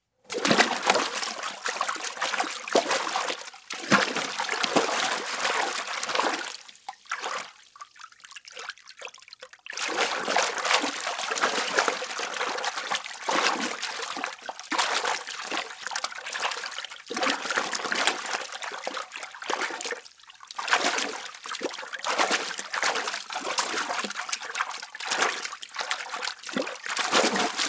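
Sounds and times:
water splashing in a bath: 0:00.3 - 0:27.6.

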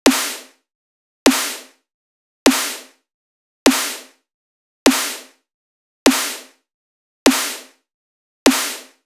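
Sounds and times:
midtempo 100 BPM snare drum loop: 0:00.0 - 0:00.5, 0:01.3 - 0:01.7, 0:02.5 - 0:02.9, 0:03.7 - 0:04.1, 0:04.9 - 0:05.3, 0:06.1 - 0:06.5, 0:07.3 - 0:07.7, 0:08.5 - 0:09.0.

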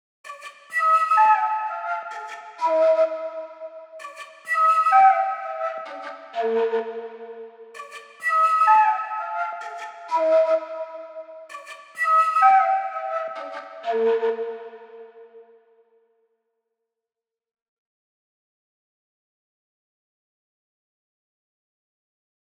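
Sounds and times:
C sharp minor quena melody loop: 0:00.2 - 0:15.6.

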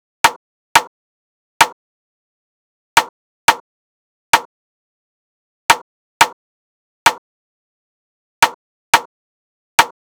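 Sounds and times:
wood block drum loop with rimshots: 0:00.3 - 0:00.9, 0:03.0 - 0:03.6, 0:05.7 - 0:06.4, 0:08.4 - 0:09.1, 0:09.8 - 0:10.0.

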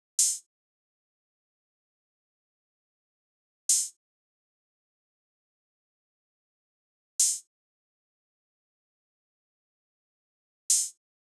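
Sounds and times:
drum loop with open hi-hat: 0:00.2 - 0:00.4.

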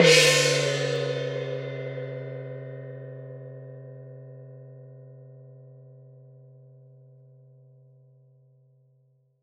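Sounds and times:
large gong: 0:00.0 - 0:05.7.

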